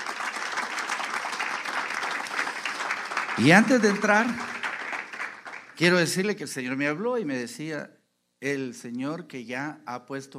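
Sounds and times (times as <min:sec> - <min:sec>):
audience applauding: 0:00.0 - 0:06.3
speech: 0:03.4 - 0:04.5, 0:05.8 - 0:10.3.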